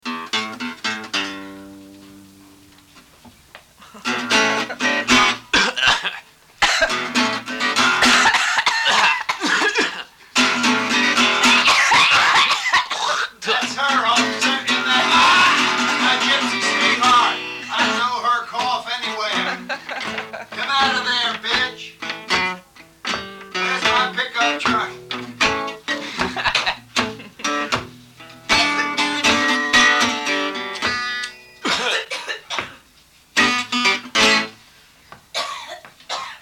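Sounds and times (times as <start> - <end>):
blues music: 0.0 - 31.7, 32.9 - 35.3
laughter: 3.8 - 5.1, 8.0 - 10.1, 19.0 - 21.0, 25.9 - 27.8
person coughing: 5.5 - 7.0, 8.0 - 10.2, 11.5 - 13.4, 31.6 - 32.8, 35.3 - 36.4.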